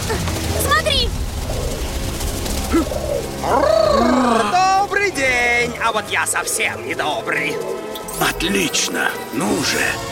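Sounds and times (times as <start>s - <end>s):
pigeons cooing: 0.5s - 4.6s, 5.8s - 8.1s
speech: 5.1s - 10.1s.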